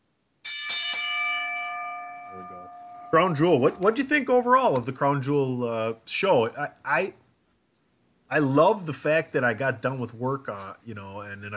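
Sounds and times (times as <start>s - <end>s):
wrestling ring bell clanging: 0.4s - 3.9s
speech: 2.4s - 7.2s, 8.3s - 11.5s.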